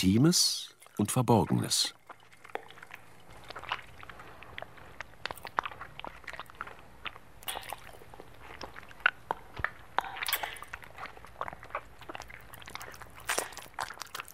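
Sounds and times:
speech: 0.0s - 2.0s
wet smacking and squelching: 0.7s - 14.3s.

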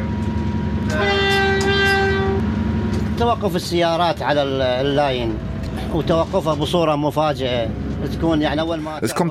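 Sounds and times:
diesel locomotive horn blast: 0.0s - 3.1s
diesel locomotive rumbling while pulling wagons: 0.0s - 9.2s
speech: 3.2s - 9.2s.

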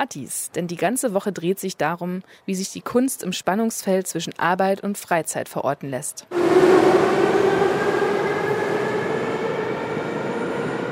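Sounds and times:
speech: 0.0s - 7.3s
metro train passing through a station: 6.3s - 10.8s.

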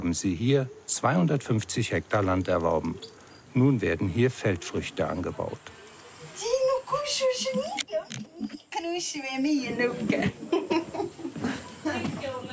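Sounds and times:
speech: 0.0s - 5.8s, 8.8s - 10.6s
activity in a village: 0.0s - 12.5s
children chattering and laughing outdoors in a village: 4.4s - 12.5s.

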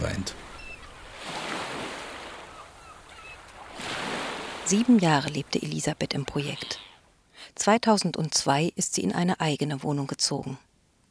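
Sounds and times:
sea waves rushing onto a beach: 0.0s - 7.2s
speech: 4.7s - 6.9s, 7.5s - 10.7s.

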